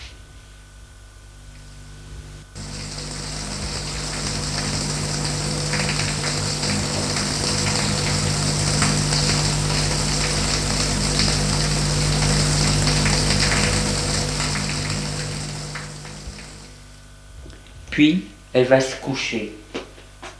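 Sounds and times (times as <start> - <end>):
shower water running: 2.4 - 17.0
speech: 18.0 - 19.6.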